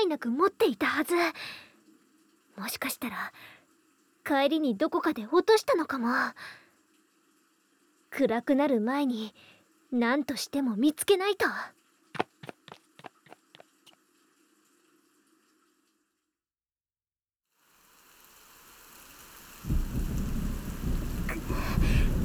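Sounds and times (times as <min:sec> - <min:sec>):
speech: 0:00.1 - 0:01.6, 0:02.6 - 0:03.6, 0:04.2 - 0:06.6, 0:08.1 - 0:11.8
sharp taps: 0:12.2 - 0:13.6
heavy rain downpour building into a storm: 0:18.2 - 0:22.2.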